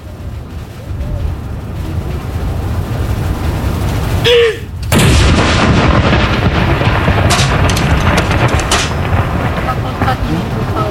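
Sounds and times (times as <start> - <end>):
steady outdoor noise: 0.0 - 10.8
ceremonial cannon salute shot at Akershus Fortress: 4.8 - 10.8.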